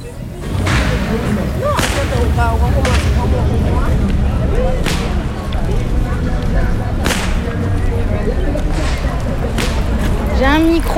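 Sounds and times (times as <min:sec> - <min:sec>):
steady low rumble: 0:00.0 - 0:10.9
voices: 0:00.0 - 0:10.9
whip cracks at a carnival: 0:01.8 - 0:02.2, 0:07.0 - 0:07.6, 0:08.8 - 0:09.9.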